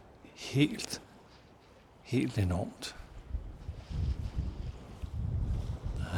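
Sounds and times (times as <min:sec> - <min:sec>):
speech: 0:00.4 - 0:01.0, 0:02.1 - 0:03.1
heavy wind buffeting the microphone outdoors: 0:03.0 - 0:06.1.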